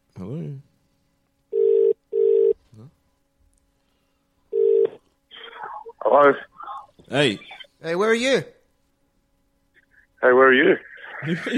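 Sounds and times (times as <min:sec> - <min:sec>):
outgoing phone call ringback tone: 0:01.5 - 0:02.6, 0:04.5 - 0:05.0
speech: 0:07.1 - 0:08.5, 0:10.2 - 0:11.5
laughter: 0:11.0 - 0:11.5.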